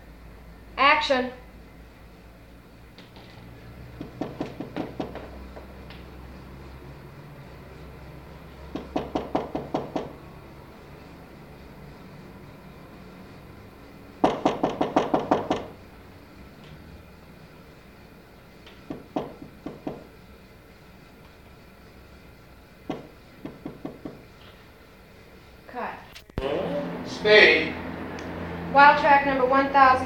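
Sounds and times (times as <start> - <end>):
low steady room hum: 0.0 - 30.0
speech: 1.0 - 1.4, 29.3 - 30.0
rapid knocking on an apartment door: 4.0 - 5.7, 8.7 - 10.2, 14.2 - 15.8, 18.8 - 20.1, 22.9 - 24.3.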